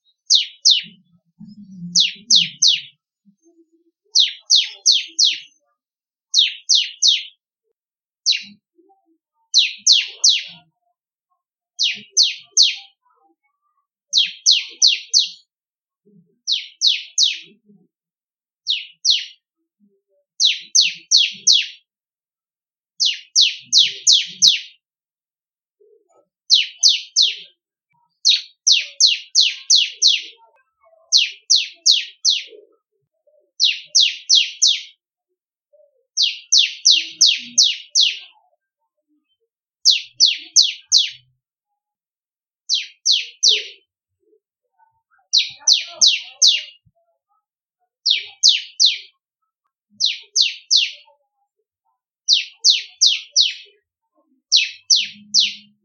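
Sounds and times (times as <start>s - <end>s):
crystal white-bellied bush chat bird singing melodiously: 0.0s - 3.0s, 4.1s - 5.6s, 6.3s - 7.4s, 8.2s - 8.7s, 9.5s - 10.8s, 11.8s - 13.0s, 14.1s - 15.5s, 16.3s - 17.7s, 18.6s - 19.4s, 20.3s - 21.9s, 23.0s - 24.8s, 26.4s - 30.4s, 31.1s - 32.8s, 33.5s - 35.0s, 36.1s - 38.2s, 39.8s - 41.3s, 42.7s - 43.9s, 45.2s - 46.9s, 48.0s - 49.2s, 50.0s - 51.0s, 52.2s - 53.8s, 54.4s - 55.8s.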